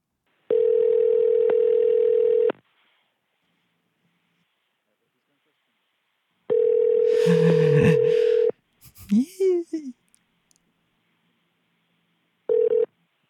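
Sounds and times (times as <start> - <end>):
telephone ringback tone: 0.5 - 2.5, 6.5 - 8.5, 12.5 - 12.9
laughter: 7.1 - 9.9
brief voice: 9.0 - 10.0.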